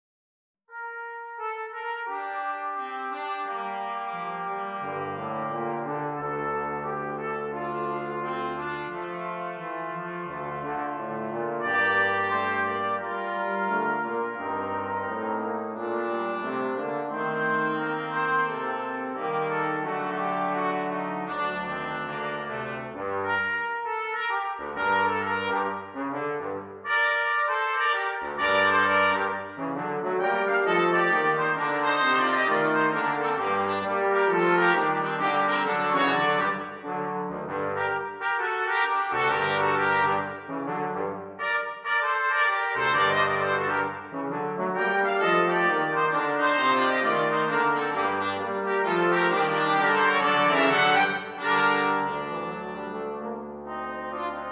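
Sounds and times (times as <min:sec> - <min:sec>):
jazz brass quartet playing: 0:00.7 - 0:54.5.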